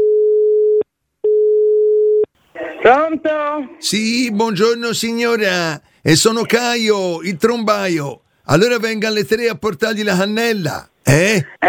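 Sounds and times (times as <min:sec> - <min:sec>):
telephone line tone as a call is placed: 0:00.0 - 0:02.3
speech: 0:02.8 - 0:11.6.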